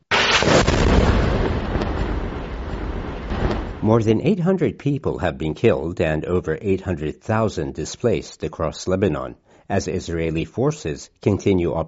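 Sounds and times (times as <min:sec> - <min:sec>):
heavy explosion with deep rumbling roar and sharper cracks: 0:00.0 - 0:04.4
speech: 0:03.9 - 0:11.8.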